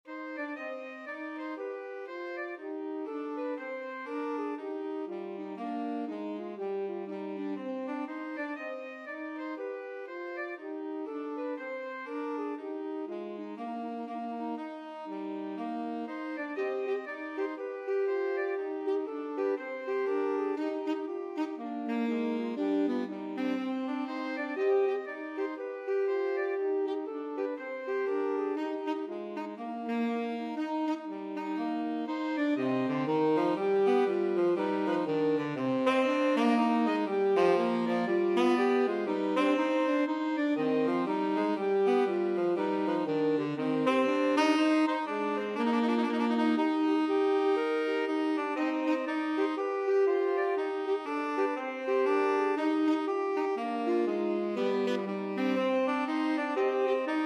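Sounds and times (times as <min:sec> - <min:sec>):
baroque bourree played by two alto saxophones and tenor saxophone: 0:00.0 - 0:57.2.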